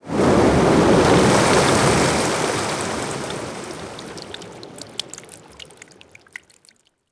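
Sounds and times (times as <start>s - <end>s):
large waterfall with water splashes: 1.2s - 6.7s.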